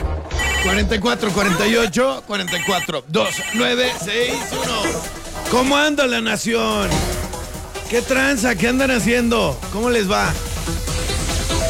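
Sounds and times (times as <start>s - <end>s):
telephone ringing in short bursts: 0.4s - 0.9s, 2.4s - 4.5s
speech: 0.6s - 7.2s, 7.9s - 10.9s.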